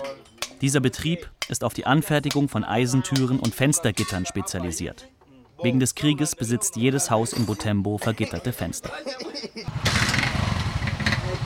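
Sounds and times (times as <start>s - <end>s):
speech: 0.2s - 10.2s
laughter: 8.0s - 9.7s
motorcycle engine running in a motorcycle repair workshop: 9.7s - 11.4s.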